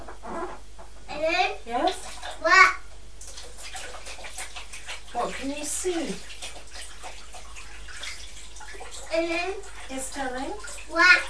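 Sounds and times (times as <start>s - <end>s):
running tap water splashing as someone washes hands: 1.7s - 11.2s
speech: 5.4s - 6.3s, 9.2s - 11.2s.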